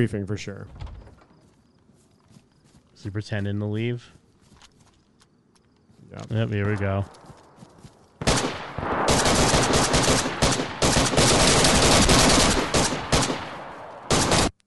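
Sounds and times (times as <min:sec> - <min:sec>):
speech: 0:00.0 - 0:01.0, 0:03.0 - 0:04.2, 0:06.1 - 0:07.3
video game automatic gunfire: 0:08.2 - 0:14.5.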